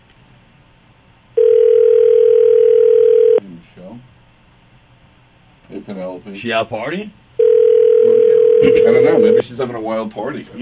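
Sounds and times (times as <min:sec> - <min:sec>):
phone line ringing tone on an outgoing call: 0:01.4 - 0:03.4, 0:07.4 - 0:09.4
speech: 0:05.8 - 0:07.2, 0:08.6 - 0:10.5.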